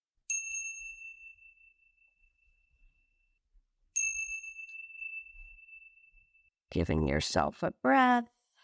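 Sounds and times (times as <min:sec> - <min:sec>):
meditation chimes ringing: 0:00.3 - 0:03.2, 0:04.0 - 0:06.5
speech: 0:06.8 - 0:08.4.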